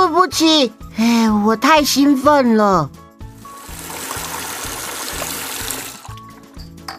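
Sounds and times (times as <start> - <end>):
speech: 0.3 - 3.0
water trickling from a faucet: 3.4 - 6.5.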